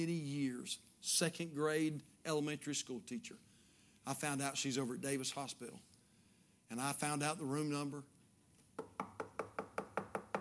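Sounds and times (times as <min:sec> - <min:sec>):
speech: 0:00.0 - 0:05.9, 0:06.7 - 0:08.2
knocking on a hospital room door: 0:08.8 - 0:10.4.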